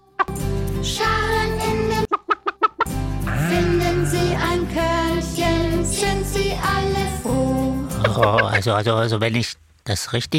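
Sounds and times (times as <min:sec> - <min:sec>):
sharp chicken clucks: 0:00.0 - 0:00.5, 0:02.0 - 0:03.0, 0:07.9 - 0:08.7
busy bouncy music track: 0:00.0 - 0:08.6
speech: 0:00.8 - 0:01.1, 0:08.2 - 0:10.3.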